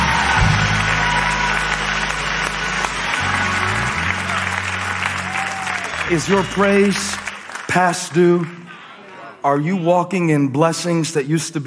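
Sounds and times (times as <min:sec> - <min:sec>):
organ or keyboard holding low chords: 0:00.0 - 0:08.7
crowd clapping: 0:00.0 - 0:09.4
speech: 0:06.1 - 0:08.6, 0:09.4 - 0:11.6.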